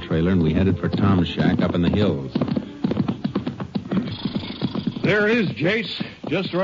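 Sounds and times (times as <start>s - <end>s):
horse hooves clip-clopping: 0.0s - 6.6s
speech: 0.2s - 3.0s, 5.0s - 6.6s
horse whinnying behind a shack in the hills: 2.0s - 5.5s.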